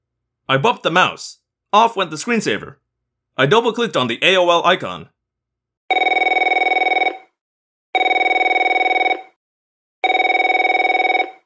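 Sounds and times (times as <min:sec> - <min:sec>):
speech: 0:00.5 - 0:02.8, 0:03.4 - 0:05.1
telephone ringing: 0:05.9 - 0:07.4, 0:08.0 - 0:09.4, 0:10.0 - 0:11.4.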